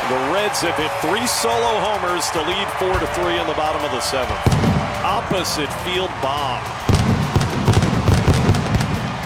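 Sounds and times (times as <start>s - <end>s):
speech: 0.1s - 6.9s
fireworks at a baseball stadium after a home run: 1.8s - 9.2s.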